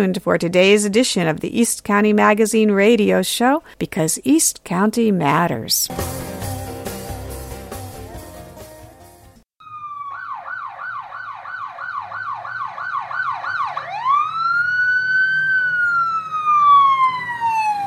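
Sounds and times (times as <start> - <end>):
speech: 0.0 - 6.3
brief burst of music: 5.9 - 9.4
ambulance siren yelping and wailing: 9.6 - 17.8.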